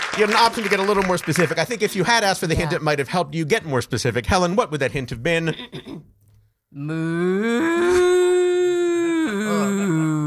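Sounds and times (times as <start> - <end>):
speech: 0.1 - 6.1, 6.7 - 8.1
person voicing a long loud cow moo: 6.7 - 10.2.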